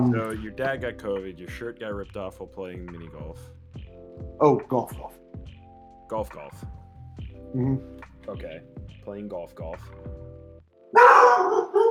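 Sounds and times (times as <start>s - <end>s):
speech: 0.0s - 3.6s, 4.2s - 5.5s, 6.1s - 6.8s, 7.5s - 10.2s, 10.9s - 11.4s
dog barking and yelping: 11.0s - 11.8s.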